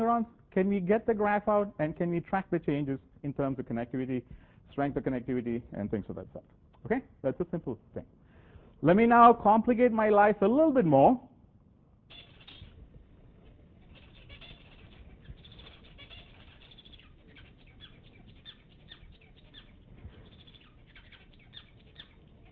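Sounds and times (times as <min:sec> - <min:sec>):
speech: 0:00.0 - 0:08.2, 0:08.8 - 0:11.3
low hiss: 0:00.0 - 0:22.5
Bengalese finch singing: 0:12.1 - 0:12.8, 0:13.4 - 0:22.5.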